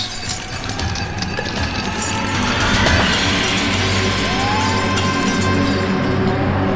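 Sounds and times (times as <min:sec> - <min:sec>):
window glass shattering: 0:00.0 - 0:06.6.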